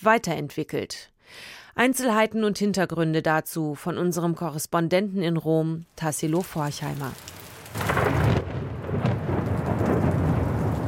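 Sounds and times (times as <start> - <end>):
speech: 0.0 - 7.9
heavy rain pouring on city streets: 6.3 - 10.8
deep thunder rumbling: 6.9 - 10.8.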